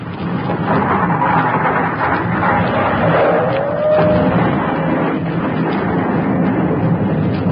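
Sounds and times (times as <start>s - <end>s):
explosion blowing up a city and starting a new volcano: 0.0s - 7.5s
faint whistling tone: 3.4s - 4.3s.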